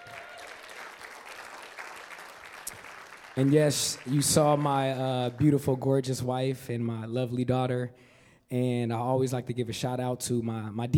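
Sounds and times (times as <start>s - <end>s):
audience applause: 0.0s - 5.4s
speech: 3.4s - 10.9s.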